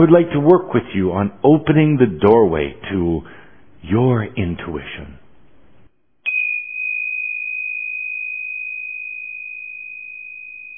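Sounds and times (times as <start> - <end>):
speech: 0.0 - 5.2
ringing chime: 6.3 - 10.7.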